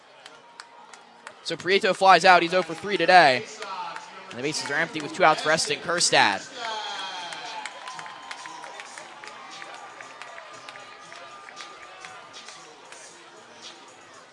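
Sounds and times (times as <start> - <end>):
baseball crowd clapping: 0.0 - 14.0
speech: 1.5 - 3.6, 4.3 - 6.7
baseball crowd shouting: 4.4 - 12.6
dense roar of voices of a large baseball crowd: 6.5 - 12.6.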